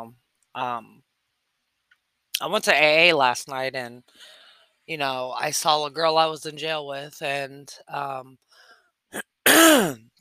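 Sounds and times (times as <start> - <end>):
speech: 0.0 - 1.1, 2.4 - 8.4, 9.1 - 10.1
man clearing his throat: 9.2 - 10.0.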